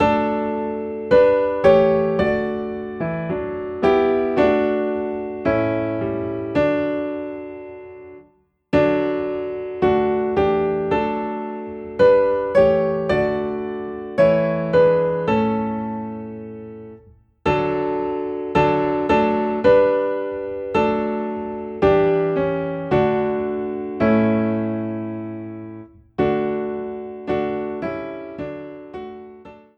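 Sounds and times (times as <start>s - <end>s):
piano in D: 0.0s - 29.7s.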